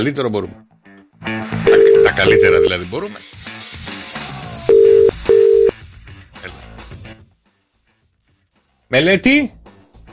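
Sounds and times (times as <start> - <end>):
speech: 0.0 - 0.6, 2.2 - 3.4, 8.9 - 9.6
busy musical background: 0.0 - 10.1
telephone ringing tones: 1.7 - 2.7, 4.7 - 5.7.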